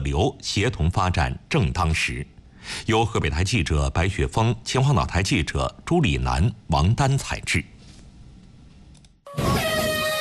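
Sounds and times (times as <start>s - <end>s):
speech: 0.1s - 7.7s
ship departure horn sounding at the start of a national sailing regatta: 9.3s - 10.1s.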